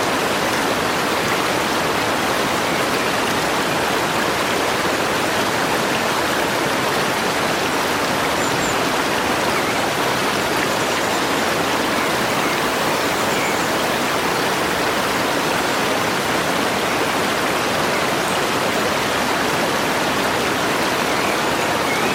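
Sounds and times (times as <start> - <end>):
snow-fed mountain stream rushing over rocks: 0.0 - 22.1
faint bird chirps in the trees: 10.6 - 15.8.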